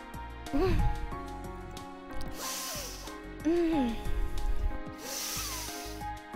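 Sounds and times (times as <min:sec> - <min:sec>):
person sniffing a flower through the nose: 0:02.2 - 0:04.4, 0:05.0 - 0:06.1.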